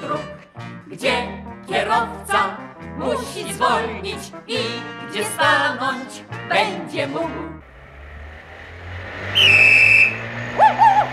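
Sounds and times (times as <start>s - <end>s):
speech: 1.0s - 7.7s
car overtaking and speeding past: 7.6s - 11.1s
sharp high whining tone: 7.6s - 11.1s.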